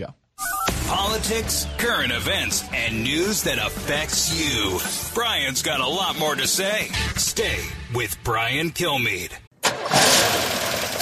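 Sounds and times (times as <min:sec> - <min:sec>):
speech: 0:00.0 - 0:00.2, 0:00.9 - 0:09.4
car engine in poor shape turning over: 0:09.6 - 0:11.0.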